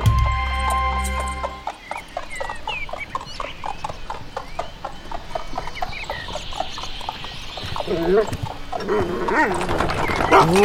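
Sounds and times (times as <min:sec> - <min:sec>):
horse hooves clip-clopping of a horse-drawn carriage: 0:00.2 - 0:10.6.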